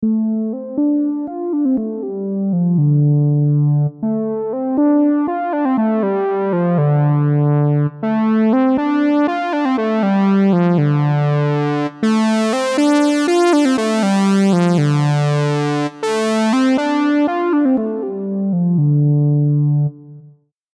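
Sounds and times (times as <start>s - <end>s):
Moog Solo synthesizer cutoff filter sweep: 0.0s - 20.3s.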